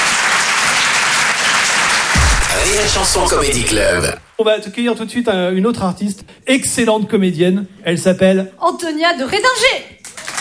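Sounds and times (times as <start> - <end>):
comedy club audience applauding a performer: 0.0 - 2.2
speech: 2.7 - 10.0.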